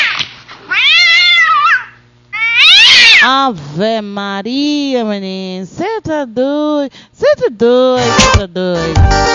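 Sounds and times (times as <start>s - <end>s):
timid cat meowing: 0.7s - 3.3s
speech: 3.2s - 9.3s.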